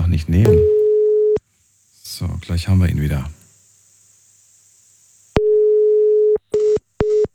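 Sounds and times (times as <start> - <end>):
speech: 0.1 - 0.8, 2.2 - 3.4
telephone line tone beeps: 0.5 - 1.4, 5.4 - 7.3.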